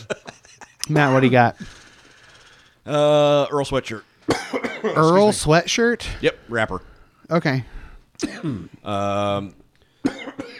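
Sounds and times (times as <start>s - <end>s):
speech: 0.9s - 1.8s, 2.8s - 9.6s
man coughing: 4.3s - 5.2s, 8.2s - 8.8s, 10.0s - 10.5s.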